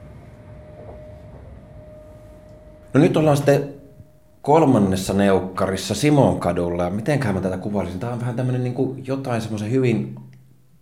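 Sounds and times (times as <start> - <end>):
train travelling back to Helsinki rolling rumble: 0.0 - 5.2
faint thin whine: 0.0 - 6.5
speech: 3.0 - 3.8, 4.4 - 10.3.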